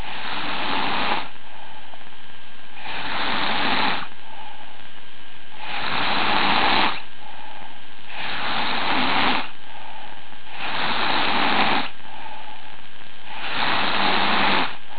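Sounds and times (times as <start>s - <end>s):
snoring: 0.0s - 1.4s, 2.8s - 4.2s, 5.6s - 7.1s, 8.1s - 9.6s, 10.5s - 12.4s, 13.2s - 14.9s.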